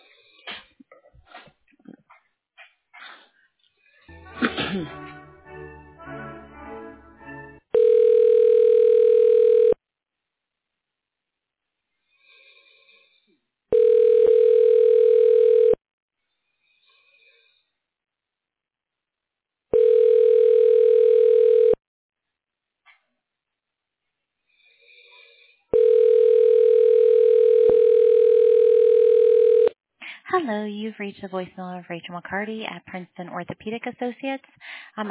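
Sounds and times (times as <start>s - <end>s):
speech: 4.4s - 5.2s, 31.0s - 35.0s
telephone line tones during a call transfer to a supervisor: 7.8s - 9.8s, 13.7s - 15.8s, 19.7s - 21.8s, 25.7s - 29.8s.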